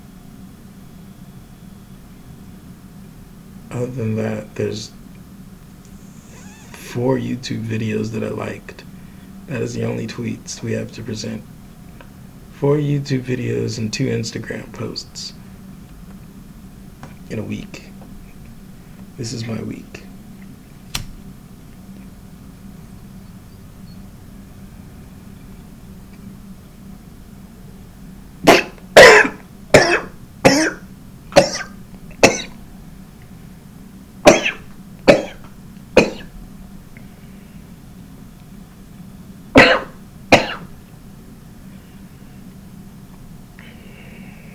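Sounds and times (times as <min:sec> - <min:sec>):
low hum: 0:00.0 - 0:44.5
speech: 0:03.7 - 0:05.0, 0:06.9 - 0:08.9, 0:09.5 - 0:11.5, 0:12.6 - 0:15.4, 0:17.3 - 0:17.9, 0:19.2 - 0:20.0
person coughing harshly: 0:28.5 - 0:30.8, 0:31.4 - 0:32.6, 0:34.3 - 0:35.4, 0:36.0 - 0:36.3, 0:39.6 - 0:40.7.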